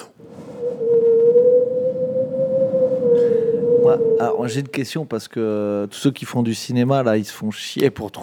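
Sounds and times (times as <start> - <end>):
voice imitating wind whistling through a small hole in a window: 0.0 - 4.8
speech: 3.9 - 8.2.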